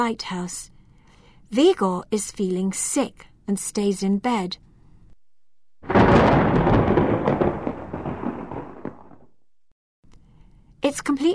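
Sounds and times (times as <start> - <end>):
speech: 0.0 - 0.7, 1.5 - 4.6, 10.9 - 11.3
thunder rolling from an approaching storm by the sea at night: 5.4 - 9.7.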